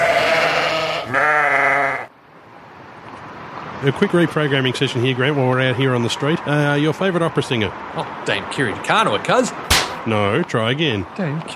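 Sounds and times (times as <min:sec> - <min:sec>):
sheep bleating with a wavering nasal baa: 0:00.0 - 0:02.1
speech: 0:03.8 - 0:11.5.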